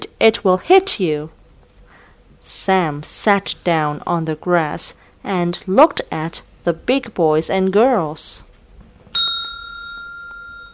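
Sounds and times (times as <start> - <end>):
speech: 0.2 - 1.4, 2.4 - 8.5
school bell ringing: 9.2 - 10.7.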